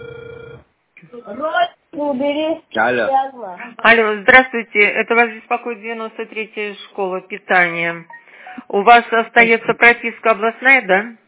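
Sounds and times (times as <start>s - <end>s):
telephone ringback tone as a call is dialed: 0.0s - 0.6s
speech: 1.3s - 11.2s.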